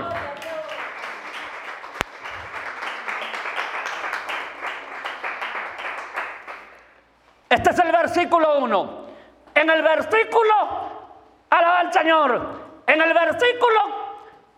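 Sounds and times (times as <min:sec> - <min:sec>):
large crowd applauding: 0:00.0 - 0:07.0
speech: 0:07.6 - 0:09.0, 0:09.6 - 0:10.8, 0:11.5 - 0:14.0.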